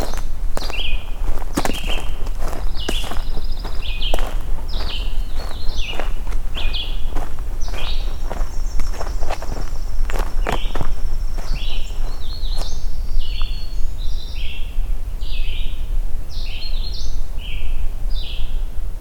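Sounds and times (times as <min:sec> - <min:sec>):
footsteps crunching outdoors at walking pace: 0:00.0 - 0:13.9
chipping sparrow calling: 0:00.0 - 0:18.7
low outdoor rumble: 0:00.0 - 0:18.9.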